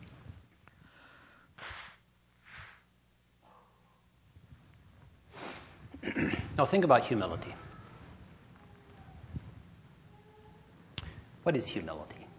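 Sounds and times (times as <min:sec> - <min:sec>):
nose blowing into a handkerchief: 0:01.6 - 0:02.9, 0:05.3 - 0:05.8
faint shuffling: 0:04.3 - 0:12.3
speech: 0:06.6 - 0:07.7, 0:11.4 - 0:12.2.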